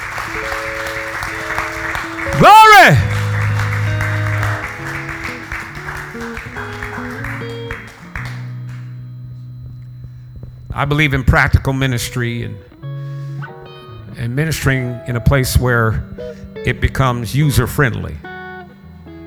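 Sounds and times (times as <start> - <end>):
laughter: 0.0 - 9.0
large crowd clapping and applauding: 0.0 - 19.2
sustained organ chords: 0.0 - 19.2
person calling out: 2.3 - 3.1
speech: 2.4 - 3.0, 10.8 - 12.7, 14.3 - 18.3.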